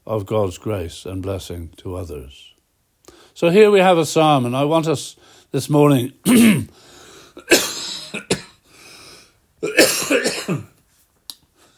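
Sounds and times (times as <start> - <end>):
speech: 0.1 - 2.5, 3.4 - 7.7
preacher coughing and clearing throat during a church sermon: 6.2 - 6.8, 7.4 - 8.6, 9.6 - 10.8.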